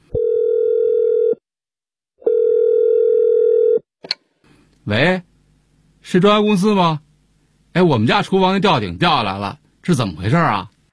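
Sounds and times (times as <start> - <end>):
telephone tones of a call being placed: 0.1 - 1.4, 2.2 - 3.8
speech: 4.9 - 5.3, 6.1 - 7.0, 7.7 - 10.7.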